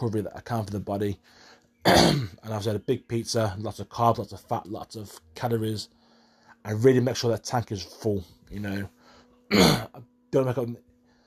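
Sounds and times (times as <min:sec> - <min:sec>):
speech: 0:00.0 - 0:06.0, 0:06.6 - 0:10.9
faint steady hum: 0:00.0 - 0:11.2
person clearing throat: 0:01.8 - 0:02.4, 0:09.5 - 0:10.0
person coughing: 0:01.9 - 0:02.4, 0:09.5 - 0:10.0.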